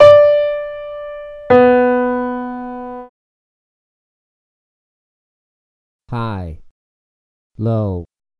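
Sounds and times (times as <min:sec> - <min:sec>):
piano notes D4 and B2: 0:00.0 - 0:03.1.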